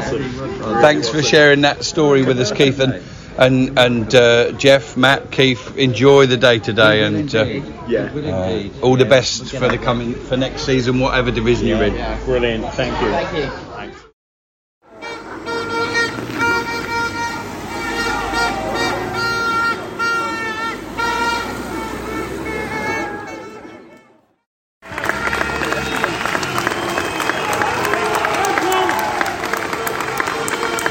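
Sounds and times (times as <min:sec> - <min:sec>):
speech: 0:00.2 - 0:13.7
vehicle horns honking as team bus arrives: 0:14.8 - 0:27.6
large outdoor crowd of fans cheering: 0:14.9 - 0:30.8
fans clapping for arriving team bus: 0:24.8 - 0:30.8.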